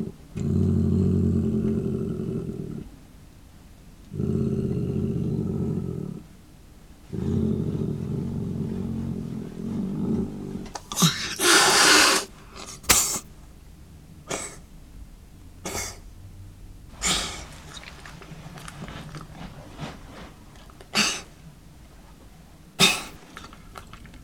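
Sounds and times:
domestic cat growling: 0.0s - 3.0s, 4.1s - 6.3s, 7.1s - 13.3s, 16.9s - 21.4s
domestic cat hissing and spitting: 10.7s - 13.3s, 14.3s - 14.6s, 15.6s - 16.0s, 16.9s - 21.4s, 22.8s - 23.9s.

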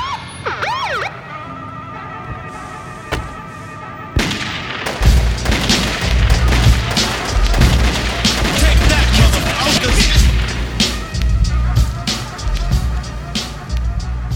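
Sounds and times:
siren wailing up and down: 0.0s - 4.2s
gunshots: 3.1s - 11.2s
loud dense music with heavy low bass: 5.0s - 14.3s.

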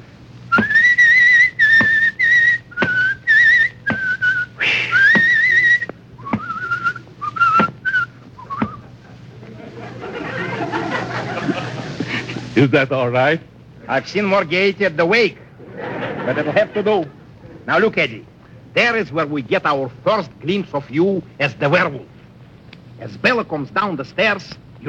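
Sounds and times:
soft rustling hiss: 0.0s - 24.8s
person whistling a cheerful bouncy tune going down cellar steps: 0.5s - 8.9s
laughter: 4.6s - 7.6s, 8.2s - 12.9s, 15.4s - 18.0s
speech: 12.6s - 15.4s, 16.2s - 22.1s, 23.0s - 24.8s.

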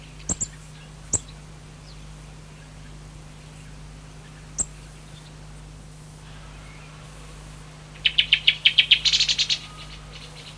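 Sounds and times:
song thrush song: 0.0s - 10.5s
sharp click: 0.3s - 0.5s.

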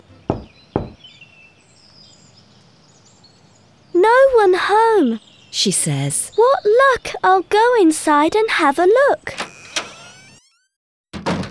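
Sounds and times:
knocking on a wooden door: 0.3s - 1.0s
speech: 4.4s - 9.4s.

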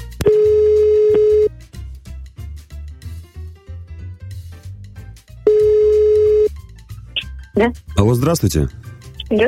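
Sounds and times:
soft music: 0.0s - 9.4s
telephone ringback tone: 0.3s - 1.5s, 5.5s - 6.6s
speech: 7.6s - 9.4s.

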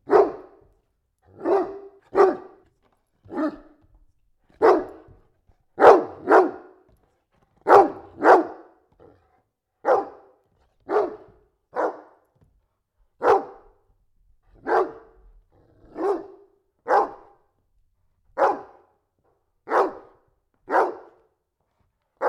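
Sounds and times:
domestic dog barking indoors: 0.0s - 0.7s, 1.3s - 2.6s, 3.2s - 3.8s, 4.5s - 5.2s, 5.8s - 6.8s, 7.6s - 8.8s, 9.8s - 12.2s, 13.2s - 13.8s, 14.6s - 15.2s, 15.9s - 17.4s, 18.4s - 18.9s, 19.6s - 21.3s.

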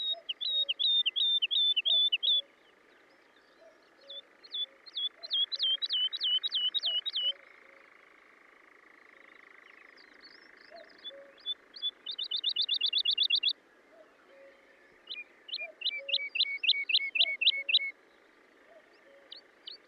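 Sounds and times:
woodlark singing rapid liquid repeated notes: 0.0s - 7.9s, 9.6s - 13.6s, 14.2s - 18.0s.

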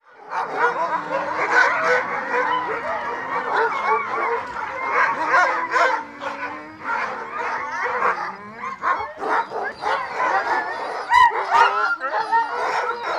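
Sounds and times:
pack of dogs barking in a dense chorus: 0.1s - 13.1s.

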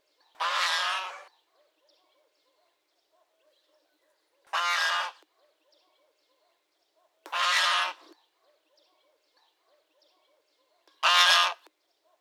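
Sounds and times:
domestic goose honking harshly: 0.4s - 1.3s, 4.5s - 5.2s, 7.3s - 8.1s, 11.0s - 11.7s
domestic goose parents cackling quietly: 0.4s - 1.3s, 4.5s - 5.3s, 7.3s - 8.2s, 11.0s - 11.7s.

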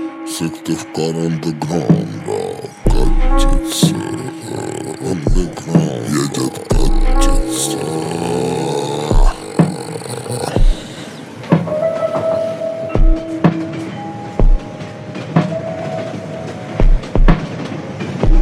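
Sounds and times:
speech: 0.4s - 8.7s
train rumbling on rails: 2.8s - 18.3s
train wheels clickety-clack thumps: 14.5s - 18.3s.

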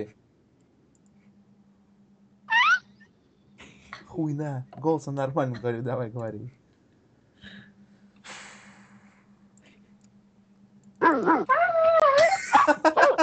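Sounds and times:
speech: 0.0s - 0.2s, 4.2s - 6.6s, 11.1s - 11.8s
low hum: 0.0s - 13.2s
dog whimpering and yipping: 2.5s - 2.8s, 11.0s - 12.4s
laughter: 12.1s - 13.2s.

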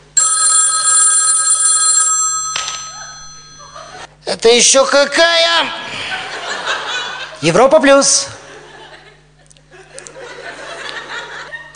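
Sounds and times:
telephone ringing with an electronic bell tone in an apartment: 0.0s - 4.1s
laughter: 2.9s - 4.2s, 5.8s - 11.7s
speech: 4.3s - 5.9s, 7.4s - 8.3s.

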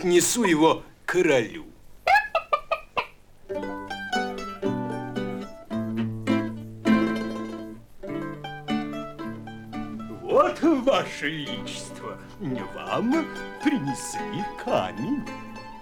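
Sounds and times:
speech: 0.0s - 1.7s, 3.5s - 3.8s, 10.6s - 15.4s
hen clucking: 2.0s - 14.6s
sustained melodic tones: 3.5s - 15.8s.

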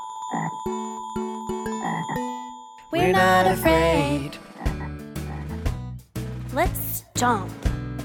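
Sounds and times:
frog croaking: 0.3s - 0.8s, 1.7s - 2.4s, 4.4s - 5.6s
speech: 3.0s - 4.4s, 6.6s - 7.7s.

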